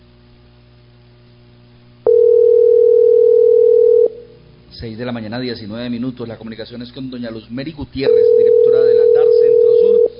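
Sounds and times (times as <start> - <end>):
faint low hum: 0.0 - 10.1
electronic ringing tone from a WhatsApp call being placed: 2.1 - 4.2, 8.1 - 10.1
speech: 4.8 - 8.8.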